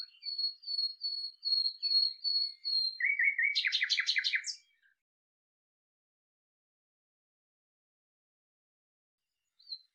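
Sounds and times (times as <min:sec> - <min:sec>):
common nightingale singing: 0:00.0 - 0:04.8.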